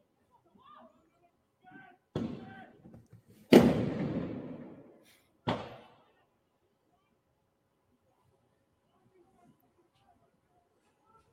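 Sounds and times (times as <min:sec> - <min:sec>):
firework bangs during bonfire night clashes with police: 0:03.5 - 0:04.8.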